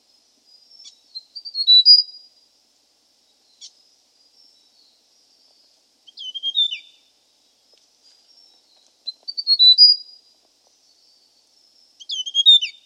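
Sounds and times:
Hill prinia soft high chirps and whistled phrases: 0:01.1 - 0:02.2, 0:06.1 - 0:07.0, 0:09.1 - 0:10.1, 0:12.0 - 0:12.8.

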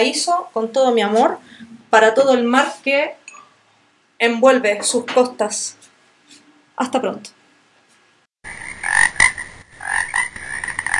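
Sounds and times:
speech: 0:00.0 - 0:03.2, 0:04.2 - 0:07.4
toads croaking: 0:08.4 - 0:10.9.

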